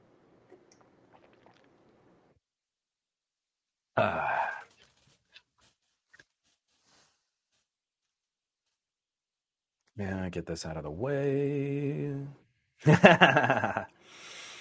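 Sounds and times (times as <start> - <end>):
person sipping and swallowing water: 0.5 - 2.1, 4.1 - 5.5
speech: 4.0 - 4.4, 10.0 - 14.3
laughter: 12.9 - 13.8.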